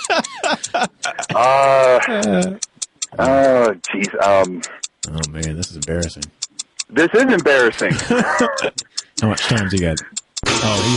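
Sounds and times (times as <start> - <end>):
laughter: 0.0 - 2.6, 6.9 - 10.9
fast steady crisp clock ticking: 0.0 - 10.9
speech: 0.1 - 2.6, 5.9 - 6.4, 7.0 - 8.7, 9.3 - 10.9.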